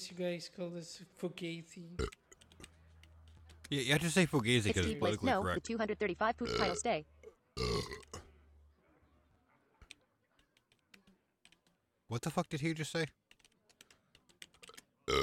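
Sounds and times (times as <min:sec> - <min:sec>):
speech: 0:00.1 - 0:02.2, 0:03.7 - 0:08.1, 0:12.1 - 0:13.2
keyboard typing clicks: 0:02.1 - 0:03.7, 0:13.2 - 0:14.9
loud drawn-out burp: 0:06.4 - 0:08.3.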